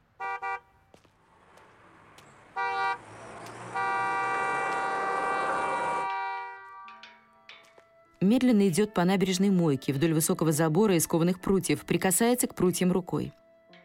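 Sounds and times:
car horn toots and blaring honk: 0.0s - 0.9s, 2.5s - 7.0s
cars passing along a street: 0.0s - 8.2s
steady traffic rumble: 0.0s - 8.4s
speech: 8.2s - 13.4s.

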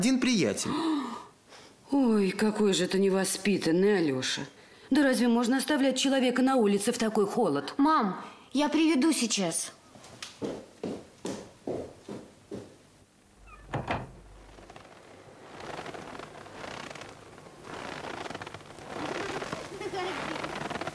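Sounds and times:
speech: 0.0s - 1.0s, 1.9s - 9.8s
rustling: 13.4s - 20.9s
dull thump: 13.5s - 14.4s
woman's footsteps crunching through snow in a garden: 14.4s - 20.9s.

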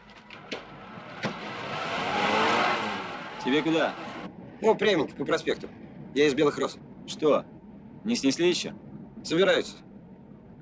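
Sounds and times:
car starting to move and driving off: 0.0s - 4.4s
speech: 3.4s - 4.0s, 4.6s - 9.9s.

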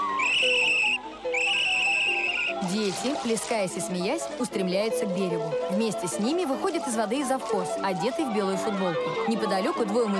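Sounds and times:
whistle blown on a beach: 0.1s - 2.6s
speech: 2.9s - 10.1s.

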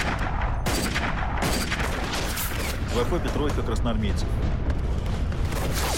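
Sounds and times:
rifle gunfire in a World War II war film sound effect: 0.0s - 2.7s
constant loud din of firing: 0.0s - 5.9s
speech: 3.0s - 4.7s.

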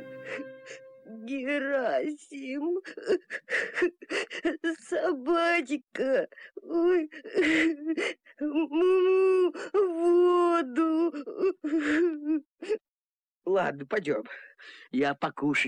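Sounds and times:
speech: 0.3s - 15.6s
person imitating crying of a calf: 2.5s - 5.2s, 5.9s - 12.8s.

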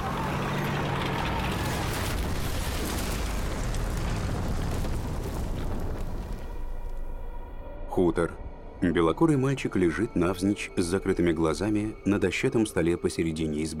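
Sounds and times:
tank running over and crushing an enemy artillery gun: 0.0s - 6.4s
speech: 8.0s - 13.7s.

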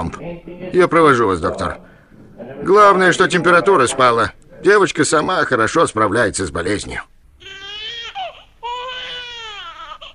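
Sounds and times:
speech: 0.0s - 7.6s
little girl crying: 7.5s - 10.1s.

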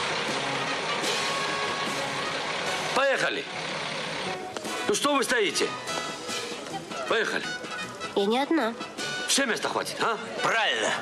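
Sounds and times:
bus pulling up and stopping by the roadside: 0.0s - 7.9s
speech: 3.2s - 4.0s, 4.9s - 6.0s, 7.1s - 7.6s, 8.2s - 11.0s.

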